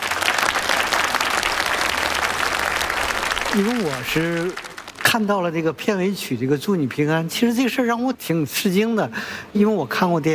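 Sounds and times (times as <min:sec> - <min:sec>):
large audience applauding: 0:00.0 - 0:05.4
speech: 0:03.5 - 0:10.3.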